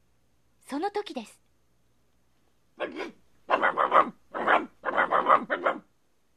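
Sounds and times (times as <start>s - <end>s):
speech: 0.7s - 1.4s
hunting dogs growling and barking: 2.8s - 5.9s.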